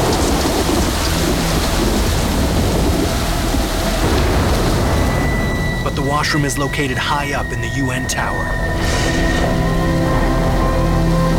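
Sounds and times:
heavy rain pouring outside a hotel: 0.0 - 11.3
speech: 6.2 - 9.6.

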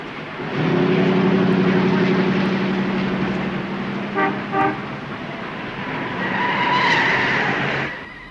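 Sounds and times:
loud car engine revving and pulling away: 0.3 - 7.9
long steady car horn blast: 4.1 - 4.9.

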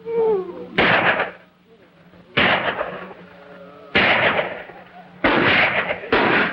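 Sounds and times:
gunshots fired from inside a cabin at cattle rustlers at night: 0.8 - 1.4, 2.4 - 3.2, 3.9 - 6.5.

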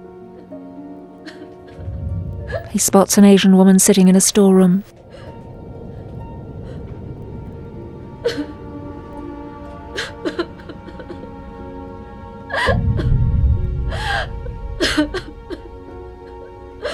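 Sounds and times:
woman sobbing with gasping breaths and whimpers: 1.2 - 3.0, 8.2 - 8.6, 9.9 - 11.7, 12.4 - 16.9
low steady rumble: 1.7 - 16.9
speech: 2.5 - 5.0.

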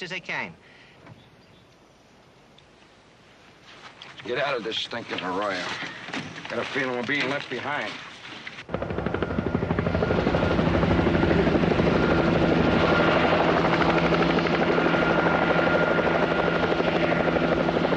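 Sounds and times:
speech: 0.0 - 0.8, 4.1 - 8.1
helicopter rotor and engine hovering beside a rocky peak: 8.7 - 17.9.

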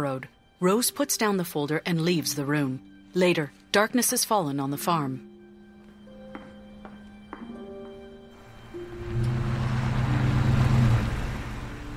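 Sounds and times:
speech: 0.0 - 5.3
pickup truck engine rumbling while pulling up: 8.4 - 11.9.

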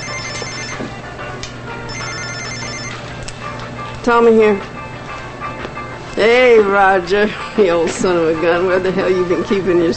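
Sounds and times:
cell phone ringtone with rapid high electronic beeping: 0.0 - 0.9, 1.9 - 3.0
speech: 4.0 - 4.7, 6.2 - 9.9.

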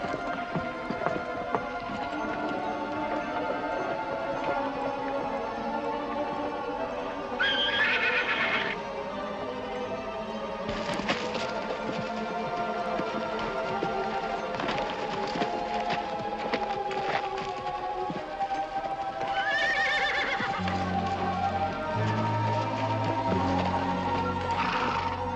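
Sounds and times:
mule hooves clopping on a hard surface: 0.0 - 25.3
mule whinnying: 7.4 - 8.8, 19.2 - 25.3.

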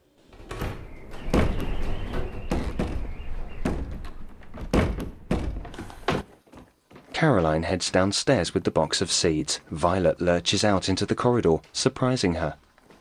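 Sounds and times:
door hidden behind shelves in an attic shaking and thumping: 0.2 - 6.3
speech: 7.2 - 12.6.

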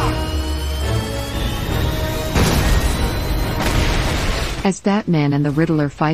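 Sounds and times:
loud broadband explosions in a factory: 0.0 - 4.9
industrial rumble with tonal hum in a factory: 0.0 - 6.1
speech: 4.6 - 6.1.

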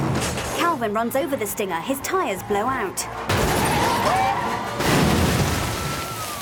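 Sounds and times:
loud rumbling engine and road noise: 0.0 - 4.9
speech: 0.8 - 3.4
car slamming into a row of water-filled barriers: 3.3 - 6.3.

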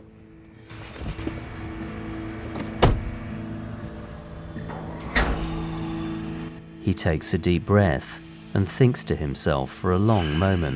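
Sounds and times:
steady low hum: 0.0 - 10.7
car door thuds as a man gets into his car: 2.6 - 3.3
speech: 6.9 - 10.7.

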